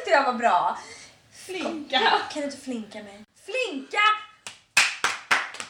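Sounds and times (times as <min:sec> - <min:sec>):
speech: 0:00.2 - 0:04.2
hand claps: 0:04.4 - 0:05.6.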